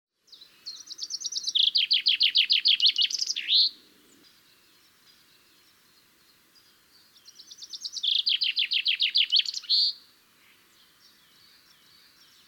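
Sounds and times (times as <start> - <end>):
Common chaffinch Fringilla coelebs singing: 0.1 - 12.4.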